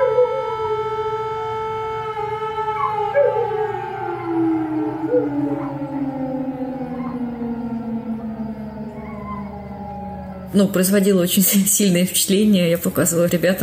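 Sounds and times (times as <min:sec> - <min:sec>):
several dogs howling together: 0:00.0 - 0:01.1, 0:02.1 - 0:11.3
sustained siren wail: 0:00.0 - 0:13.6
speech: 0:10.5 - 0:13.6.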